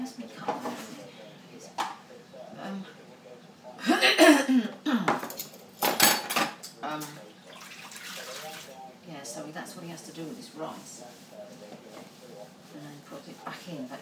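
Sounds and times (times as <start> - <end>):
people talking: 0.0 - 6.0, 8.1 - 14.0
knife, fork, teaspoon and big spoon clattering into a kitchen sink: 5.1 - 7.2
running water in a kitchen sink: 7.1 - 8.9.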